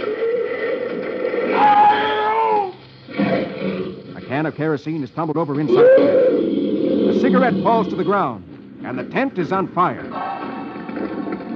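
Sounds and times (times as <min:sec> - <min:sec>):
terrified tiger roaring in a rolling cage: 0:00.0 - 0:04.3, 0:05.6 - 0:08.4
tiger snarl: 0:03.1 - 0:04.3, 0:05.7 - 0:08.4
speech: 0:04.5 - 0:10.3.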